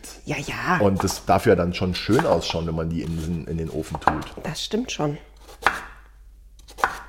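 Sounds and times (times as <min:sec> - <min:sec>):
speech: 0:00.3 - 0:05.7
knife chopping on a cutting board: 0:00.8 - 0:01.4, 0:02.0 - 0:04.5, 0:05.3 - 0:07.0.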